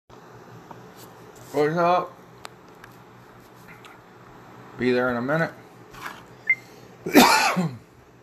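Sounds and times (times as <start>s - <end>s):
speech: 1.5s - 2.2s, 4.8s - 5.6s, 7.0s - 7.8s
harsh throaty cough: 7.0s - 7.9s.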